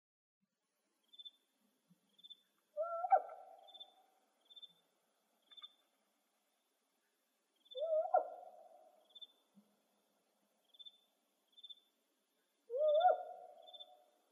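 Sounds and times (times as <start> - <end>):
steady faint high insect chirps: 1.0 - 1.5, 2.1 - 2.6, 3.3 - 6.7, 8.6 - 9.5, 10.5 - 14.3
spotted owl barking calls in Arizona: 2.8 - 4.7, 7.6 - 9.3, 12.7 - 14.2.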